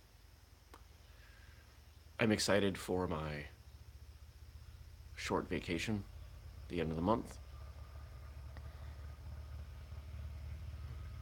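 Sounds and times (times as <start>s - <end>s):
speech: 2.2s - 3.6s, 5.2s - 6.1s, 6.7s - 7.4s
motorcycle engine idling: 3.4s - 11.2s.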